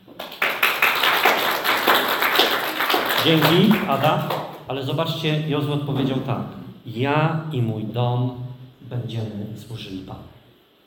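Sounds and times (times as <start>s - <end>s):
group of people applauding a woman for her flower arrangements: 0.0s - 4.6s
speech: 3.2s - 10.4s.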